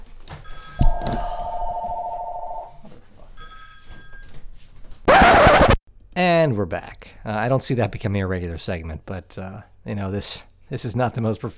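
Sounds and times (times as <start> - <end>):
telephone ringing with electronic trill: 0.5 - 4.3
faint chiming tones: 0.6 - 2.8
loud burst of static-like noise: 5.1 - 5.8
speech: 6.2 - 11.5.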